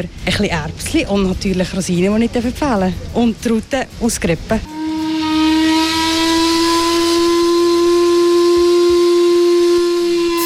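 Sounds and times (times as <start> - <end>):
speech: 0.0 - 4.8
paddle steamer steam whistle on Lake Lucerne: 4.7 - 10.4.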